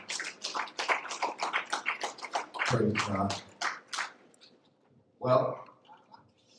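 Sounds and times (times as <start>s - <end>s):
crowd applauding a pastor after a prayer: 0.0s - 4.2s
speech: 2.7s - 3.5s, 5.2s - 5.7s.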